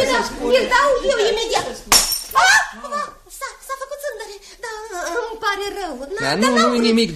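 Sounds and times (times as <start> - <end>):
speech: 0.2 - 1.9, 6.2 - 7.1
drinking glass shattering: 1.9 - 2.5.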